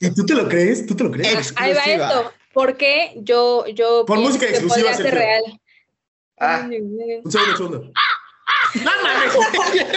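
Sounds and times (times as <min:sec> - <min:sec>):
speech: 0:00.0 - 0:05.6, 0:06.4 - 0:08.1, 0:08.7 - 0:09.9
person imitating crow caw: 0:07.3 - 0:08.8
laughter: 0:08.5 - 0:09.9.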